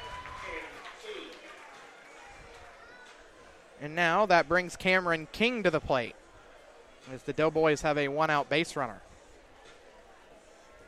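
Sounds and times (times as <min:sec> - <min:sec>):
ballpark crowd at a baseball game clapping: 0:00.0 - 0:02.0
speech: 0:03.8 - 0:06.2, 0:07.1 - 0:09.1.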